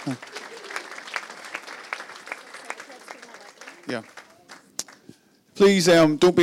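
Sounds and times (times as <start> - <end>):
speech: 0.0 - 0.4, 3.9 - 4.2, 5.6 - 6.4
church audience applauding: 0.0 - 5.0.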